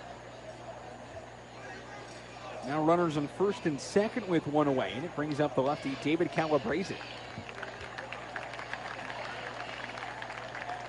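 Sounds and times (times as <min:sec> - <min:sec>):
faint low hum of the baseball venue: 0:00.0 - 0:10.8
speech: 0:02.6 - 0:07.2
modest crowd clapping at a baseball game: 0:05.2 - 0:10.8.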